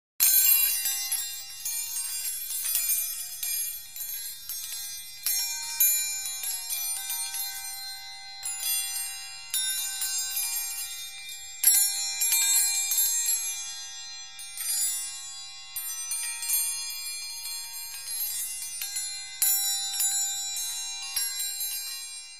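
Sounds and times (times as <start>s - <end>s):
pond bells multitone: 0.2s - 22.3s.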